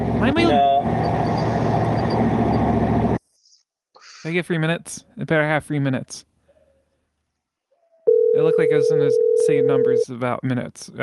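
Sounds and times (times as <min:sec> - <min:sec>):
Dodge truck V8 engine running: 0:00.0 - 0:03.2
speech: 0:04.2 - 0:06.3, 0:08.4 - 0:11.0.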